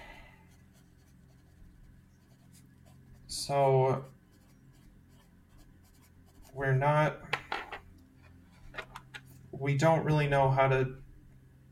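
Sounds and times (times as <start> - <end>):
pen or pencil scratching on paper while writing by hand: 0.5 - 3.2, 4.0 - 6.6
speech: 3.3 - 4.2, 6.6 - 7.3, 9.6 - 11.0.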